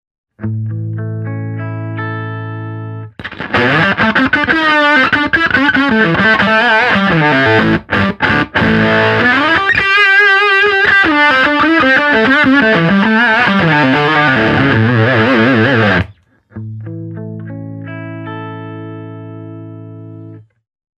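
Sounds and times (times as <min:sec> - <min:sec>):
sustainer effect pedal: 0:00.4 - 0:20.3.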